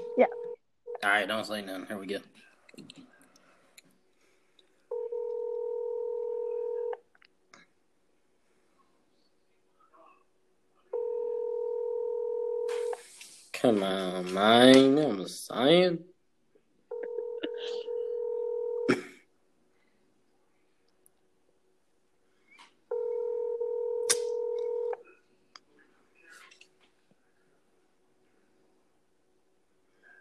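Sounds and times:
speech: 0:00.2 - 0:00.4, 0:01.0 - 0:03.0, 0:13.6 - 0:16.1
unanswered phone line ringback tone: 0:04.9 - 0:07.0, 0:11.0 - 0:12.9, 0:16.9 - 0:18.9, 0:22.9 - 0:25.0.

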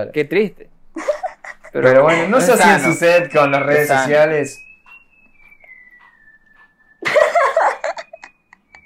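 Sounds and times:
speech: 0:00.0 - 0:01.1, 0:01.7 - 0:04.7
laughter: 0:01.0 - 0:04.1, 0:07.0 - 0:08.3
person whistling one long steady note: 0:02.1 - 0:08.8.

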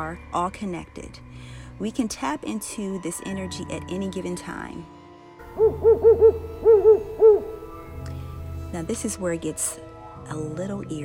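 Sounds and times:
speech: 0:00.0 - 0:05.0, 0:05.6 - 0:06.7, 0:08.7 - 0:11.0
owl hooting: 0:05.5 - 0:07.7.

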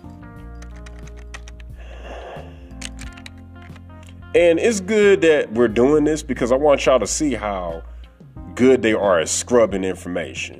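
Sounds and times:
typing on a computer keyboard: 0:00.4 - 0:01.7, 0:02.7 - 0:03.9
speech: 0:04.4 - 0:07.9, 0:08.6 - 0:10.5.

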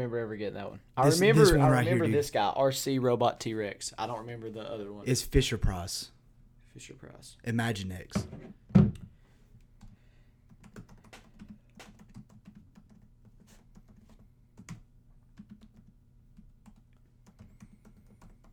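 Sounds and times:
speech: 0:00.0 - 0:06.2, 0:06.8 - 0:08.7
low hum: 0:00.0 - 0:18.5
computer keyboard typing: 0:09.8 - 0:18.5.

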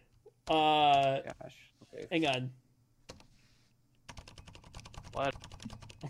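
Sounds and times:
speech: 0:00.5 - 0:02.6, 0:05.2 - 0:06.0
typing on a computer keyboard: 0:04.1 - 0:06.0.

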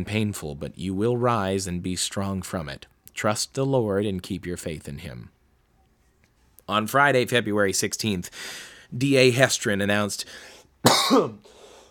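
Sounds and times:
speech: 0:00.0 - 0:05.4, 0:06.7 - 0:11.6
harsh raspy cough: 0:10.8 - 0:11.5.

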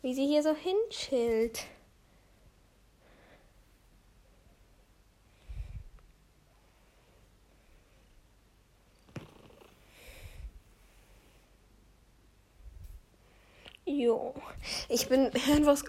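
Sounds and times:
speech: 0:00.0 - 0:01.8, 0:14.0 - 0:15.8
cat purring while being petted: 0:06.5 - 0:11.4.

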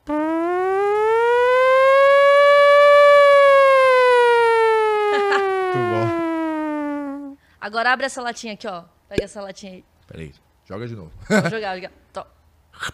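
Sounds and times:
voice imitating an air-raid war siren: 0:00.1 - 0:07.4
laughter: 0:05.1 - 0:06.2, 0:11.3 - 0:11.6
speech: 0:07.7 - 0:12.9.

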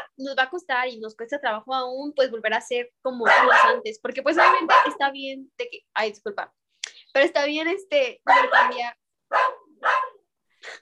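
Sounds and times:
speech: 0:00.2 - 0:09.6
dog barking: 0:03.2 - 0:05.1, 0:08.2 - 0:10.3.

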